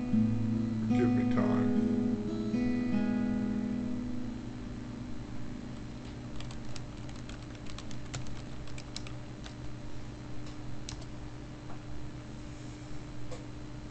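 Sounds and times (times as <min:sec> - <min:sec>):
steady low hum: 0:00.0 - 0:13.8
typing on a computer keyboard: 0:06.4 - 0:09.7, 0:10.9 - 0:11.1.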